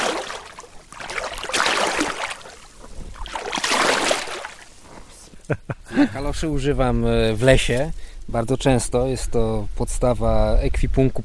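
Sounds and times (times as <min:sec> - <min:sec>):
water sloshing around rubber boots wading through a shallow fast-flowing river: 0:00.0 - 0:04.9
speech: 0:05.5 - 0:11.2.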